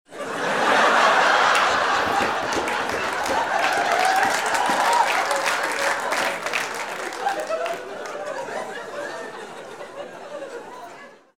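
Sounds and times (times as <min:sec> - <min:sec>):
laughter: 0:00.1 - 0:11.3
applause: 0:01.0 - 0:08.7.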